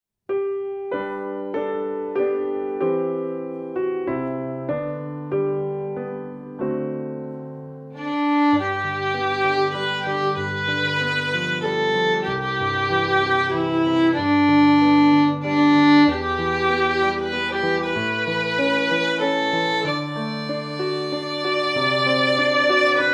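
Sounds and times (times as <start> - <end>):
piano: 0.3 - 23.1
intermediate violin: 7.9 - 23.1.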